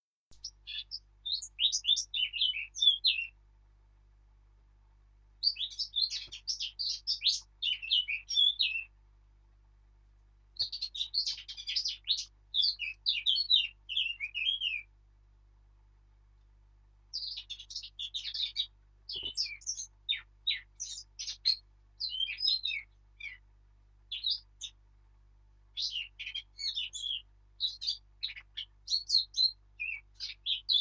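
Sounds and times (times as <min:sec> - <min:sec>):
Sylvia atricapilla: 0:00.3 - 0:03.4, 0:05.4 - 0:08.9, 0:10.6 - 0:14.9, 0:17.1 - 0:23.4, 0:24.1 - 0:24.8, 0:25.8 - 0:30.8.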